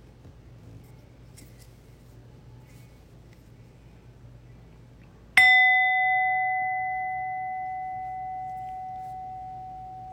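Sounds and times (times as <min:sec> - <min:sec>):
meditation bell struck to end a meditation practice period: 0:05.4 - 0:10.1.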